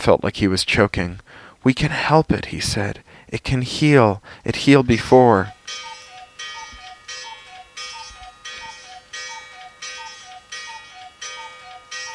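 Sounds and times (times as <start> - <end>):
speech: 0.0 - 5.9
faint mechanical whir of cuckoo clock: 4.4 - 12.1
cuckoo clock striking two-note cuckoo call: 4.9 - 12.1.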